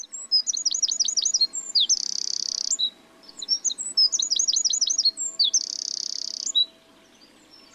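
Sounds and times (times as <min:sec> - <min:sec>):
wren singing repetitive trill song: 0:00.0 - 0:07.7.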